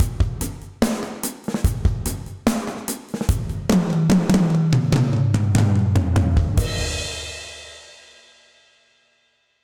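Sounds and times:
session drums with dark plate reverb: 0.0s - 9.0s.

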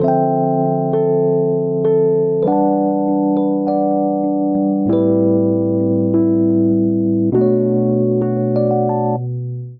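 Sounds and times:
soul minor ninth chord progression in D minor on electric keyboards: 0.0s - 9.7s.

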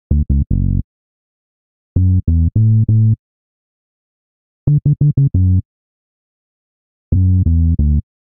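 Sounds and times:
bassline in F sharp minor at 85 bpm: 0.0s - 0.8s, 2.0s - 3.2s, 4.7s - 5.6s, 7.1s - 8.1s.

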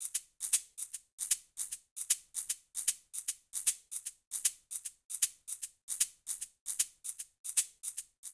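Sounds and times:
Afro jazz shakers Latin percussion rhythm: 0.0s - 8.3s.

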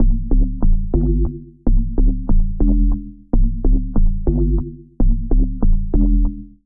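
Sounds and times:
bass line in A minor: 0.0s - 6.6s.

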